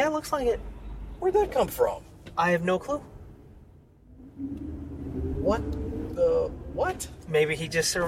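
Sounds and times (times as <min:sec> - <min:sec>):
speech: 0:00.2 - 0:03.1, 0:04.4 - 0:08.0
car rolling past with engine rumble and road noise: 0:04.0 - 0:08.0.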